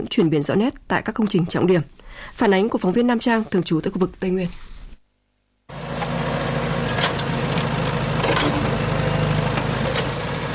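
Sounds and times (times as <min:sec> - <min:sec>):
speech: 0:00.0 - 0:04.7
trucks, excavators and heavy machinery levelling ground on a construction site: 0:05.7 - 0:10.5.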